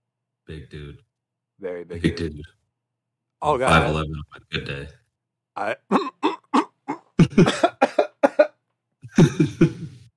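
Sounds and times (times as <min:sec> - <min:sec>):
speech: 0:00.5 - 0:02.6, 0:03.4 - 0:05.0, 0:05.6 - 0:06.3, 0:07.2 - 0:07.7
person coughing: 0:05.9 - 0:09.8.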